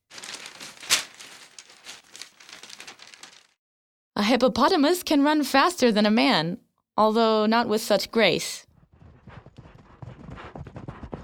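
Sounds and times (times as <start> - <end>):
sheet of paper being handled and folded: 0.0 - 3.6
speech: 4.2 - 8.7.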